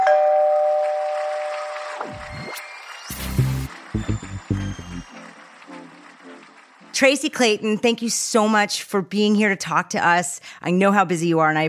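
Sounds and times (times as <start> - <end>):
doorbell chiming with sustained tones: 0.0 - 1.8
brief sweeping sound: 2.0 - 5.1
short buzzy electronic pulses: 2.0 - 5.1
speech: 7.0 - 11.6.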